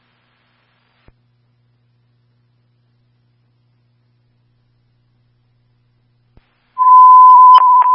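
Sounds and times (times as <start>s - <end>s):
fire dispatch radio alert tone for a fire alarm: 6.8s - 7.9s.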